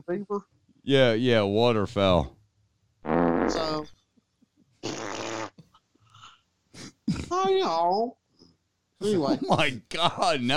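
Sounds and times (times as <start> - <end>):
speech: 0.0 - 2.4, 3.0 - 4.0, 4.8 - 5.1, 7.1 - 8.2, 9.0 - 10.5
loud raspy fart in the backwoods of Louisiana: 3.0 - 3.9, 4.8 - 5.6.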